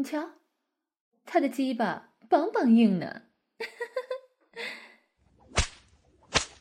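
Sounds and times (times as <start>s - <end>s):
speech: 0.0s - 0.4s, 1.3s - 4.0s
whooshing swish: 5.4s - 6.6s
whip cracks: 5.5s - 6.6s.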